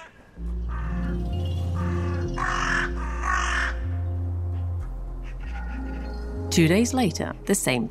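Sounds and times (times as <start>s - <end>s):
crow on a park bench cawing: 0.0s - 4.0s, 5.2s - 6.1s
speech: 6.6s - 7.8s.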